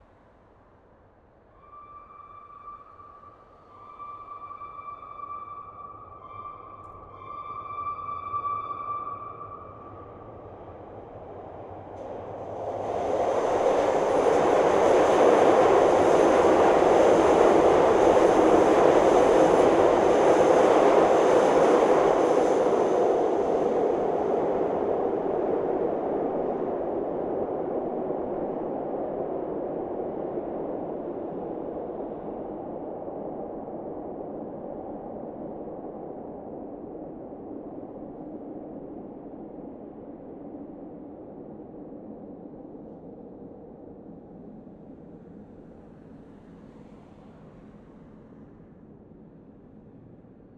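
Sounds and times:
L train passing, heard through underground sidewalk grate: 1.5 - 30.4, 43.1 - 50.5
L train alert horn: 1.6 - 10.2.

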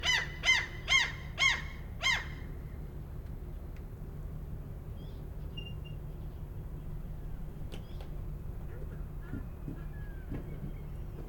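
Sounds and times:
seagull calls at a harbour pier in Norway: 0.0 - 2.4
boat engine hum: 0.0 - 11.2.

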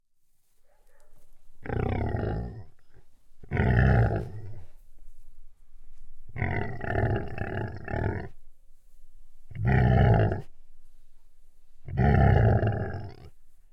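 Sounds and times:
pig snorting: 1.6 - 4.7, 6.4 - 8.4, 9.5 - 10.5, 11.8 - 13.7.

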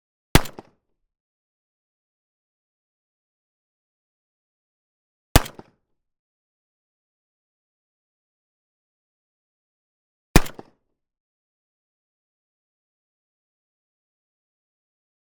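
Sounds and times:
Saiga 12 shotgun 12 gauge single shots: 0.4 - 0.7, 10.4 - 10.7.

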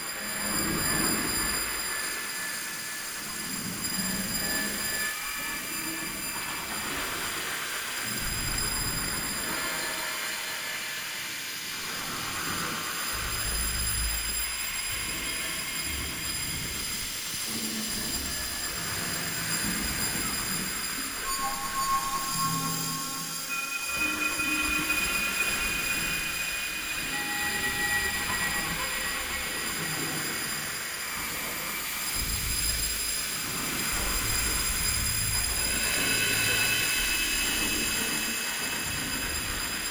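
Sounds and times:
washy whistle ambience loop: 0.0 - 39.8.

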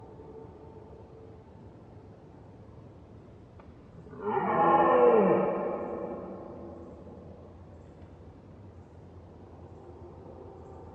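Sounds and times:
red deer roaring: 4.1 - 6.8.

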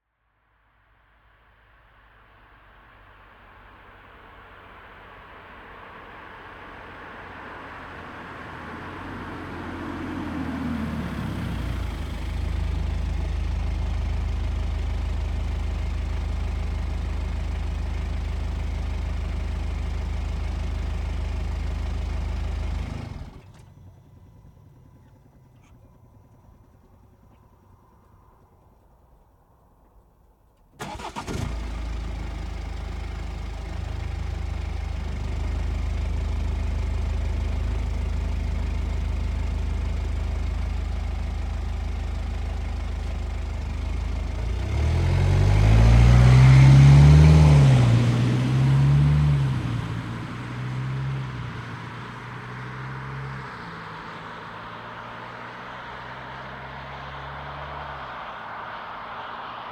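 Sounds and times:
BMW 420D Gran Coupe engine idling: 2.2 - 59.0.

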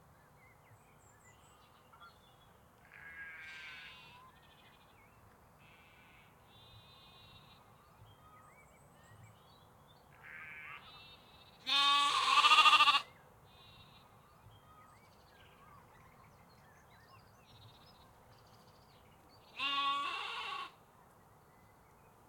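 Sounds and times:
sheep and lambs bleating in the UK: 2.9 - 4.2, 10.2 - 13.1, 19.5 - 20.8.

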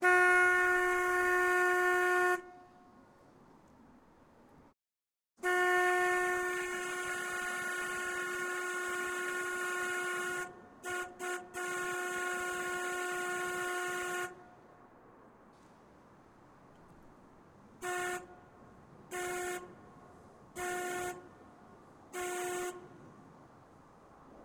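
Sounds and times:
narrowboat horn on a 1960 narrowboat with Gardner 4LW engine: 0.0 - 2.7, 5.4 - 14.4, 17.8 - 18.4, 19.1 - 19.8, 20.6 - 21.3, 22.1 - 22.9.

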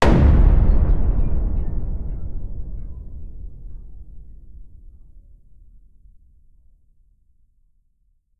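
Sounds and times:
trailer impact hit: 0.0 - 5.0.

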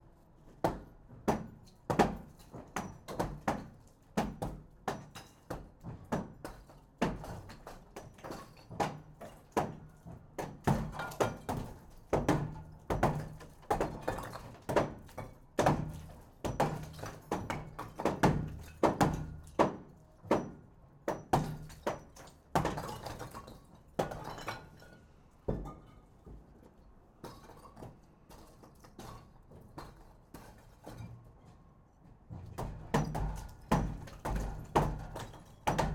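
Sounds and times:
very faint background construction noise: 0.0 - 35.9
sledgehammers hitting concrete block wall: 0.6 - 24.9, 32.6 - 35.9.

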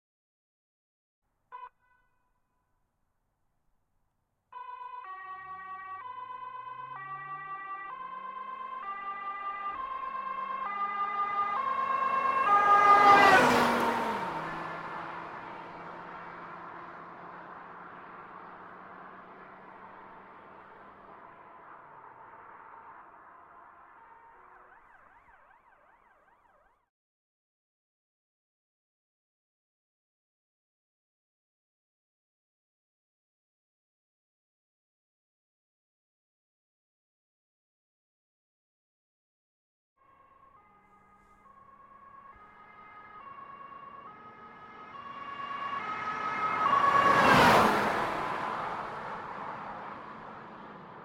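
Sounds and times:
Volvo V70 police car passing fast outside: 4.6 - 26.6, 40.6 - 51.0.

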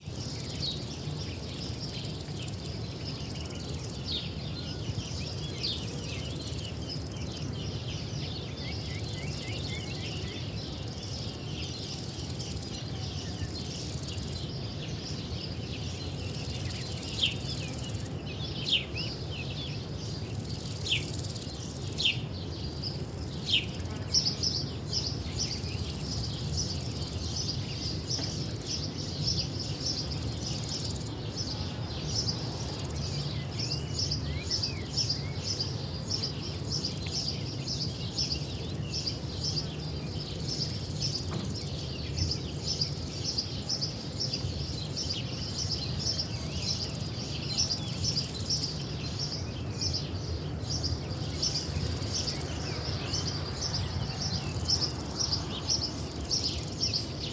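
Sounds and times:
birds in Spain: 0.0 - 57.3
cicadas in Spain: 0.0 - 57.3
crickets in Spain: 0.0 - 57.3.

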